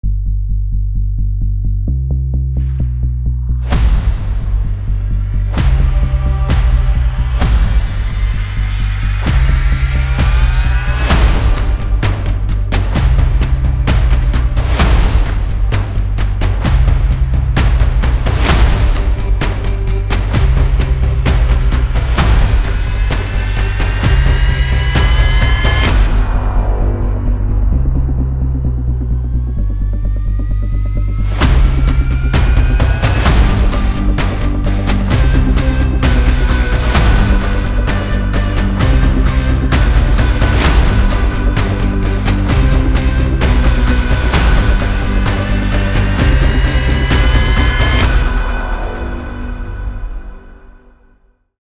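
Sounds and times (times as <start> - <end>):
inspiring motivational cinematic trailer music: 0.0 - 51.5.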